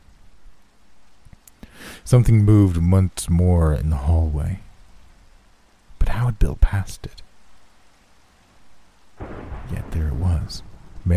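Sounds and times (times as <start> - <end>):
steady rain: 0.0 - 11.1
speech: 2.0 - 4.7, 6.3 - 7.3, 9.7 - 11.1
thunder rumble: 9.2 - 11.1.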